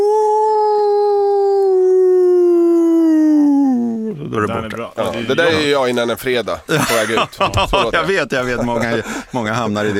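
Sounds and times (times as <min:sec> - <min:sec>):
human voice imitating a wolf howl: 0:00.0 - 0:04.3
laughter: 0:04.3 - 0:09.9
speech: 0:04.4 - 0:09.9.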